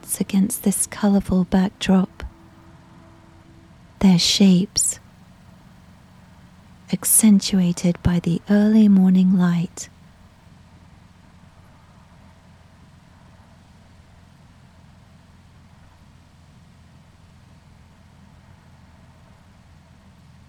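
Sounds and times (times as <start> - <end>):
constant road hiss: 0.0 - 8.4
bus engine rumble driving through desert: 0.0 - 10.4
speech: 0.2 - 2.2, 4.0 - 5.0, 6.9 - 9.9.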